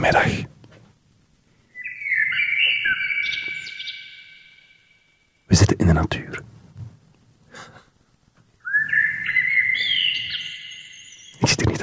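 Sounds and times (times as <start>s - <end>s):
low noise outdoors in nature: 0.0s - 11.8s
speech: 0.1s - 0.5s, 5.5s - 6.5s
bird whistling a rising phrase during a birdwatching outing: 1.7s - 5.2s, 8.6s - 11.8s.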